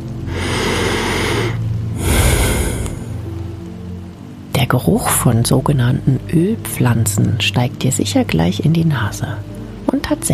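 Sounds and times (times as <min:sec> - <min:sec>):
deep breath in: 0:00.3 - 0:03.3
speech: 0:04.6 - 0:10.3.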